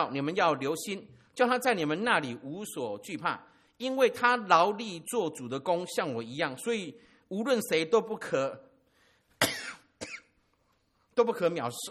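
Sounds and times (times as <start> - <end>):
speech: 0.0 - 8.7, 11.2 - 11.8
person coughing: 9.4 - 10.4.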